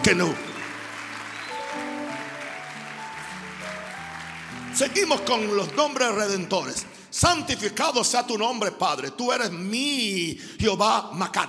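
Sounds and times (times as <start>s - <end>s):
speech: 0.0s - 0.5s, 4.8s - 11.4s
church audience clapping during a worship service: 0.0s - 6.9s.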